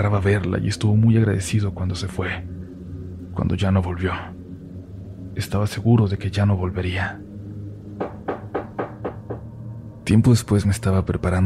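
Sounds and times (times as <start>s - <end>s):
speech: 0.0s - 2.6s, 3.4s - 4.4s, 5.4s - 7.2s, 10.1s - 11.4s
low hum: 0.0s - 11.4s
knocking on a door: 8.0s - 9.5s.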